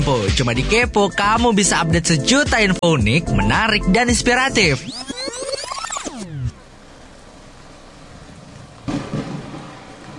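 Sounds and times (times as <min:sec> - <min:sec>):
speech: 0:00.1 - 0:05.0
falling tonal sweep: 0:04.6 - 0:06.6
heavy rain: 0:06.6 - 0:10.1
thunder: 0:08.5 - 0:10.1.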